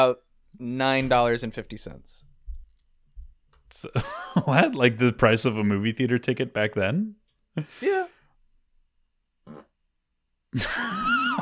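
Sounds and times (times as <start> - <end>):
speech: 0.0 - 2.3, 3.7 - 8.1, 10.5 - 11.3
laughter: 3.9 - 4.8, 10.6 - 11.3
fart: 9.4 - 9.8.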